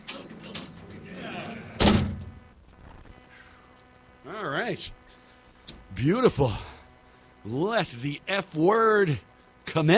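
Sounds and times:
heavy door slamming shut with a loud thud: 1.8 - 2.4
speech: 4.3 - 5.0, 6.0 - 6.7, 7.4 - 9.9.

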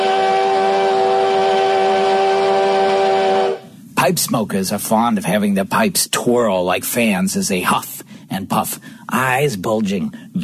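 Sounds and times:
steam whistle toot: 0.0 - 3.8
speech: 4.1 - 10.4.

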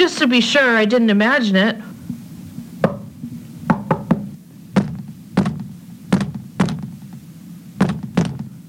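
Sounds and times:
speech: 0.0 - 1.9
low hum: 0.0 - 8.6
solid knocks on a wall: 2.8 - 3.1, 3.7 - 7.2, 7.8 - 8.6.

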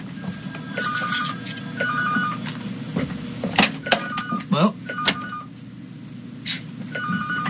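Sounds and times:
steady low hum: 0.0 - 7.4
electronic telephone ringing during a live radio broadcast: 0.6 - 2.5, 3.8 - 5.5, 6.9 - 7.4.

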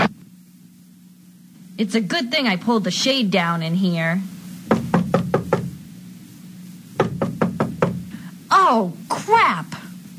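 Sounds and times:
speech: 1.8 - 4.4, 8.7 - 9.8
firm knocks on a door: 4.7 - 5.8, 7.0 - 8.2.

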